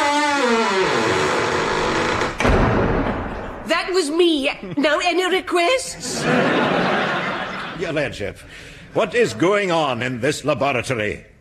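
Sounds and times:
door creaking: 0.0 - 3.5
speech: 4.0 - 6.8, 7.8 - 11.3
laughter: 6.0 - 9.8.

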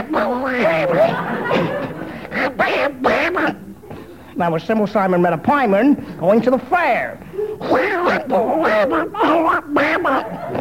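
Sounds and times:
person doing a cartoon duck voice impression: 0.0 - 1.1, 2.3 - 3.6, 7.6 - 10.4
laughter: 0.0 - 4.0, 7.3 - 10.6
speech: 0.1 - 1.9, 4.4 - 10.6.

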